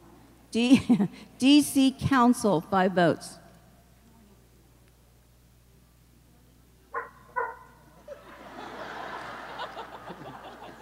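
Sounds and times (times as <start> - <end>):
speech: 0.5 - 3.4
scattered laughter: 0.6 - 1.2, 8.0 - 10.8
dog barking: 6.9 - 7.8.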